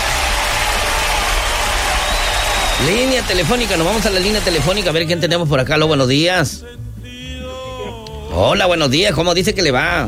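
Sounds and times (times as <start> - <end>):
crowd clapping hands in applause: 0.0 - 5.0
speech: 2.8 - 6.9, 8.4 - 10.0.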